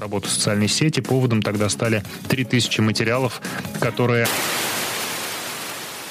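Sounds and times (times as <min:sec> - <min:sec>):
speech: 0:00.0 - 0:04.6
radio static hiss: 0:04.2 - 0:06.0.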